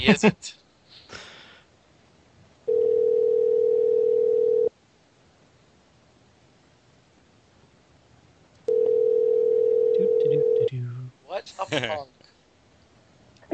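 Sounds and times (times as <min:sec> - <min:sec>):
speech: 0:00.0 - 0:00.6, 0:11.7 - 0:12.2
telephone ringback tone during an outgoing call: 0:02.7 - 0:04.7, 0:08.7 - 0:10.7.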